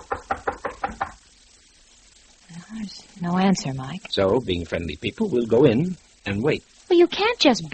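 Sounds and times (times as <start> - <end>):
quick firm knocks on a wooden room door: 0.0 - 1.2
speech: 2.8 - 7.7.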